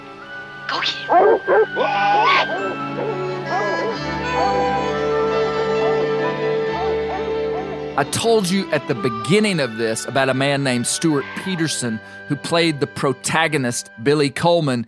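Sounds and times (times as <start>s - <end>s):
coon dogs barking and yipping: 0.7s - 8.0s
speech: 0.8s - 3.8s, 8.0s - 14.8s.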